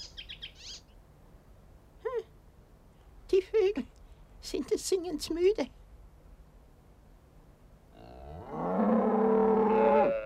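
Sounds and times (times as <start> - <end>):
speech: 3.3 - 5.8
cow letting out a long drawn-out moo in a farm scene: 8.0 - 10.2.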